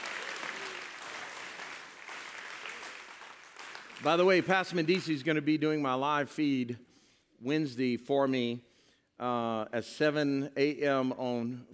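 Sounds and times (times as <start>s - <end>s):
church audience applause: 0.0s - 4.6s
speech: 4.0s - 11.7s.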